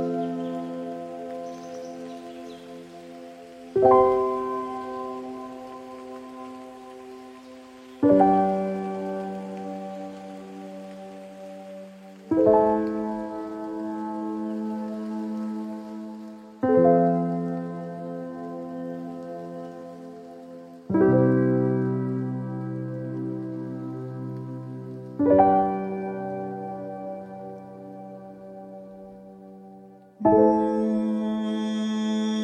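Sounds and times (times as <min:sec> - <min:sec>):
slow calm instrumental song with sustained chords: 0:00.0 - 0:32.4
soft steady rain-like hiss: 0:00.0 - 0:32.4
speech: 0:03.8 - 0:04.2.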